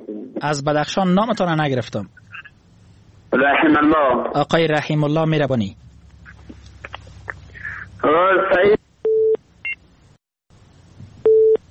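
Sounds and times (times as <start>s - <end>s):
faint telephone line hiss: 0.0s - 11.7s
speech: 0.4s - 2.2s, 3.3s - 5.8s, 8.0s - 8.8s
telephone busy tone beeps after a call drops: 9.1s - 9.4s, 11.2s - 11.6s.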